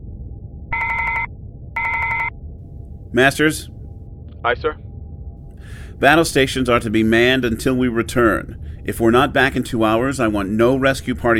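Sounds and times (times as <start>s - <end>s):
low rumble: 0.0s - 11.3s
intercom phone ringing: 0.7s - 2.3s
speech: 3.1s - 3.8s, 4.4s - 4.8s, 5.6s - 11.3s.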